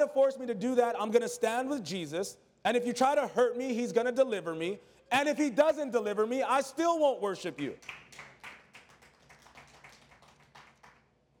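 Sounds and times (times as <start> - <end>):
speech: 0.0 - 8.3
audience clapping in a steady rhythm: 7.7 - 11.2.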